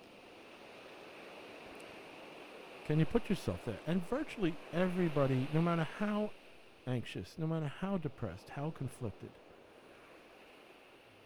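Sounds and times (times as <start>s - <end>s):
ocean surf waves: 0.0s - 11.2s
speech: 2.9s - 9.4s.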